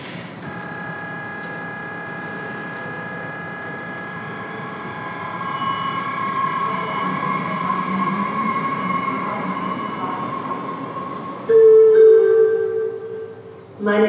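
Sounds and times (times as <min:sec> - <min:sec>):
whining mechanical drone of train: 0:00.4 - 0:13.5
loud sustained horn or brake squeal tone: 0:00.4 - 0:13.6
regional train arriving at station platform: 0:06.0 - 0:13.6.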